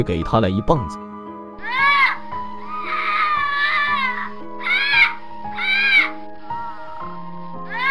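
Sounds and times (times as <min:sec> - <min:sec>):
speech: 0:00.0 - 0:01.1
baby wailing in the night: 0:01.6 - 0:07.0, 0:07.6 - 0:07.8.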